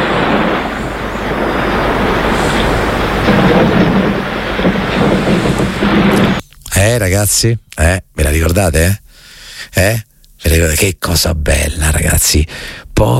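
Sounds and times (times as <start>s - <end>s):
rushing gusts of cold wind: 0.0s - 6.4s
deep continuous thunder rumble of a storm from the west: 0.0s - 7.4s
speech: 6.8s - 9.0s, 9.7s - 13.1s.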